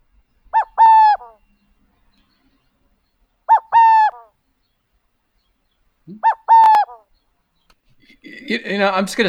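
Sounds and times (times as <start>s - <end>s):
Western burrowing owl cooing song: 0.5s - 1.5s, 3.5s - 4.4s, 6.1s - 7.2s
speech: 6.1s - 6.4s, 8.5s - 9.2s.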